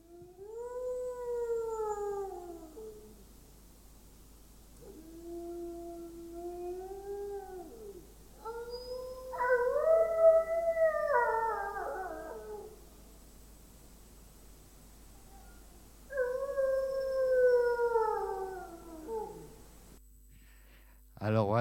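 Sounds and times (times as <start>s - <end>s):
wolves howling at night: 0.0s - 3.2s, 4.8s - 12.9s, 15.2s - 19.6s
faint hiss: 0.0s - 21.6s.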